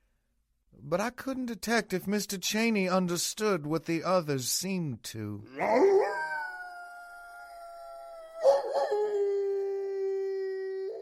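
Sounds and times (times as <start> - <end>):
speech: 0.8 - 6.2
long mournful howls: 5.5 - 11.0.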